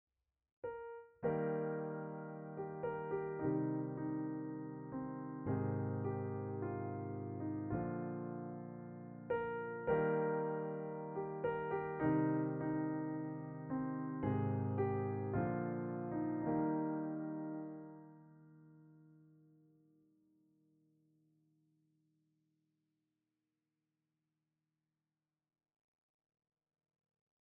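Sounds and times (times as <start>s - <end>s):
mellow intimate Steinway D grand piano: 0.6s - 19.4s.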